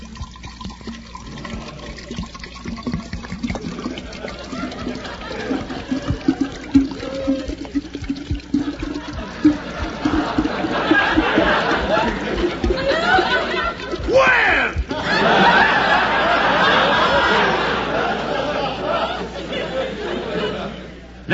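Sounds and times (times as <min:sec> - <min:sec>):
straight wood alcohol pouring into a glass: 0:00.0 - 0:15.0
laughter: 0:01.3 - 0:02.2, 0:03.5 - 0:21.2.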